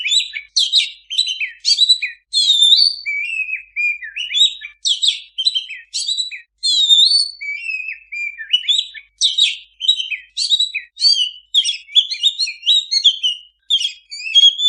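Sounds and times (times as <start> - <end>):
Oriental magpie-robin singing vigorously: 0.0 - 14.6.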